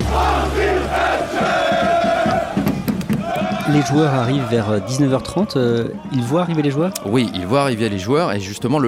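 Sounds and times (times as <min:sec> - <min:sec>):
football supporters clapping: 0:00.0 - 0:03.9
large crowd of football supporters chanting in unison: 0:00.0 - 0:07.8
speech: 0:03.7 - 0:08.8.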